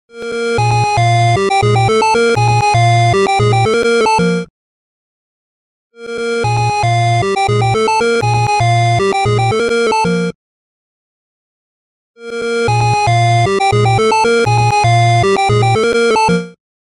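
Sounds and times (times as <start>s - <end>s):
arcade clock alert ringtone: 0.2s - 4.5s, 6.0s - 10.4s, 12.2s - 16.6s.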